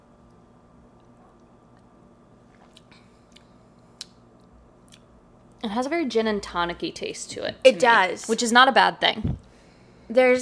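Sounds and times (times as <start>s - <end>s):
low steady hum: 0.0s - 10.4s
person sipping a drink with ice: 1.0s - 3.6s
speech: 5.6s - 9.4s, 10.1s - 10.4s.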